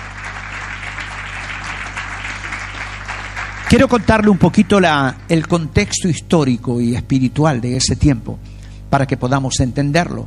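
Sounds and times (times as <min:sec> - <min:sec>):
audience applauding: 0:00.0 - 0:05.6
low electrical hum: 0:00.0 - 0:10.2
speech: 0:03.7 - 0:10.2.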